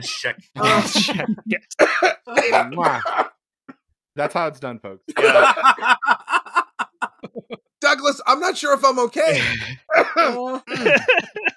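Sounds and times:
laughter: 0.0s - 3.3s, 5.1s - 7.7s, 9.3s - 11.5s
speech: 0.0s - 3.3s, 4.2s - 6.4s, 7.5s - 11.5s
person with a strained throat coughing: 0.6s - 3.4s, 5.1s - 5.7s, 9.4s - 11.5s.

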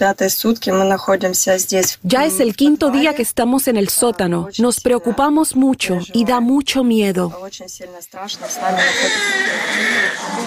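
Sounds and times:
speech: 0.0s - 10.4s
newborn babies crying: 8.6s - 10.4s.

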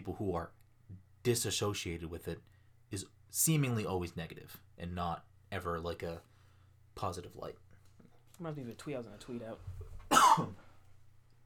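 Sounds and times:
speech: 0.0s - 6.3s, 7.0s - 7.6s, 8.4s - 10.6s
person coughing: 10.1s - 10.6s.

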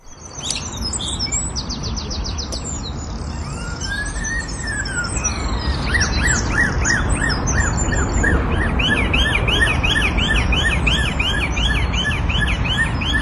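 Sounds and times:
rapid high bird chirps and tweets: 0.0s - 13.2s
bird mimicking police car sirens: 3.2s - 13.2s.

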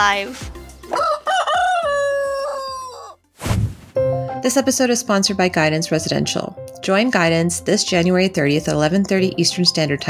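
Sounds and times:
speech: 0.0s - 1.1s, 4.4s - 10.0s
rooster crowing: 0.9s - 3.2s
brief rustle or flutter: 3.4s - 4.0s.

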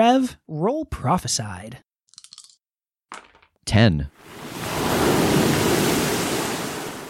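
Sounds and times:
speech: 0.0s - 1.9s, 3.1s - 4.5s
choppy ocean waves: 4.2s - 7.0s.

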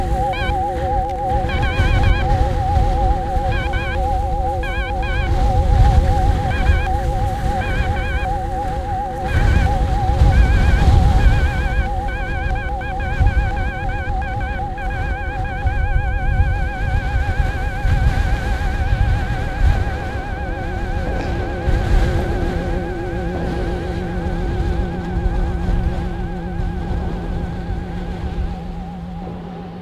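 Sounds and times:
birdsong chirping in an Estonian bog: 0.0s - 23.5s
low wind rumble at a Danish sand dune: 0.0s - 29.8s
wavering whistled synth tones: 0.0s - 29.8s.

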